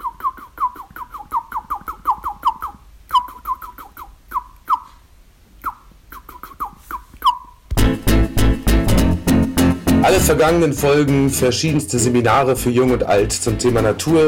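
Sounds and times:
bird chirping: 0.0 - 5.0, 5.6 - 7.7
music: 7.7 - 14.2
speech: 10.1 - 14.2.

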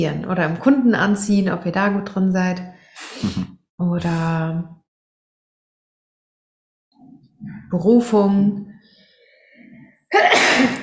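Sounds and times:
speech: 0.0 - 4.8, 7.7 - 8.7, 10.1 - 10.8
sneeze: 10.1 - 10.8.

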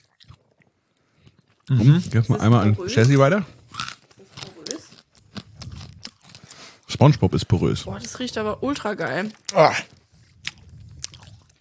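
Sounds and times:
back teeth crunching hard sugary medicine-smelling candy: 0.0 - 2.3, 3.0 - 6.7, 9.3 - 11.5
speech: 1.7 - 3.6, 7.0 - 10.0.

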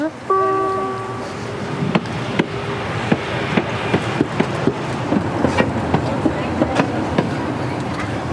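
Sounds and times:
small park railway train mechanical rumble: 0.0 - 8.3
small park railway train whistle: 0.2 - 1.4
small park railway train wheels clacking over rail joints: 1.6 - 8.3.

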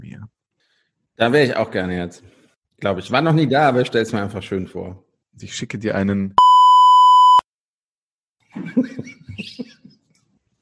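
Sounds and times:
speech: 1.2 - 6.4, 8.6 - 9.7
loud steady censor bleep tone: 6.4 - 7.4
laughter: 8.5 - 10.0.

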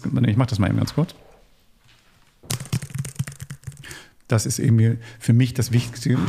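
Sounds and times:
speech: 0.0 - 1.3, 4.3 - 6.2
touch typing on a mechanical computer keyboard: 2.5 - 3.9.

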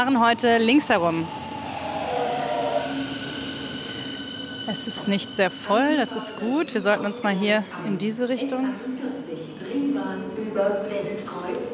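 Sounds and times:
speech: 0.0 - 1.4, 4.7 - 9.6, 10.6 - 11.7
loud rail rumble of S-Bahn train: 0.0 - 7.6
Berlin S-Bahn Ringbahn S41 train arriving at station: 0.0 - 11.7.

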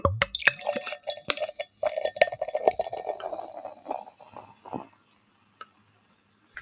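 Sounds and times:
glass clinking: 0.1 - 4.0
beer pouring into a glass, glugging and foaming: 0.3 - 5.0.

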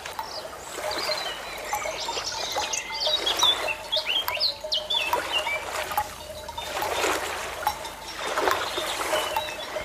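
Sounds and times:
gentle ocean waves washing in and out: 0.0 - 9.8
small birds chirping and tweeting: 0.0 - 9.8.

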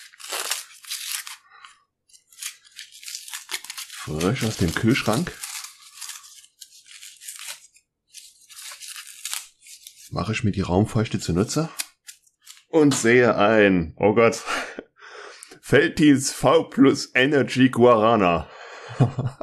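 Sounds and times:
paper and tape being ripped and crinkled: 0.0 - 10.2, 11.4 - 12.7
speech: 4.1 - 5.4, 10.2 - 11.8, 12.7 - 14.5, 15.7 - 19.4
laughter: 18.8 - 19.4.

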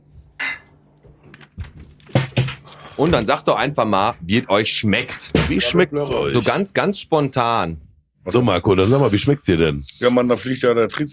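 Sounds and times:
glasses clinking in a toast: 0.4 - 0.7
speech: 3.0 - 11.1.

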